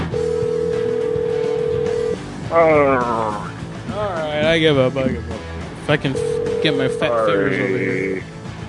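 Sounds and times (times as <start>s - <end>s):
telephone ringing on an outgoing call: 0.1s - 2.2s, 6.1s - 7.4s
speech: 2.5s - 3.4s, 4.5s - 8.3s.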